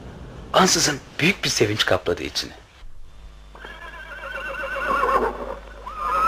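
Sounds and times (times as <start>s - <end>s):
speech: 0.5s - 2.6s
horse neighing: 3.6s - 6.2s.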